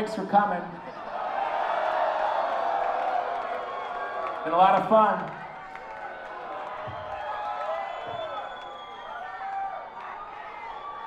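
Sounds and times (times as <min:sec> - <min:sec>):
speech: 0:00.0 - 0:00.9, 0:04.4 - 0:05.4
large audience yelling and calling out together: 0:00.9 - 0:11.0.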